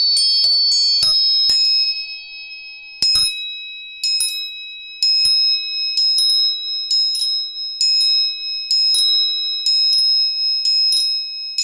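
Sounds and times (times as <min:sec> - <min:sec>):
tuning fork ringing for tuning: 0:00.0 - 0:11.6.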